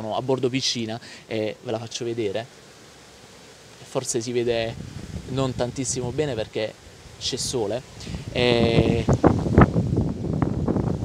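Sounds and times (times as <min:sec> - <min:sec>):
speech: 0:00.0 - 0:02.7, 0:03.9 - 0:09.6
strong wind buffeting the microphone outdoors beside a swimming pool: 0:04.4 - 0:11.0.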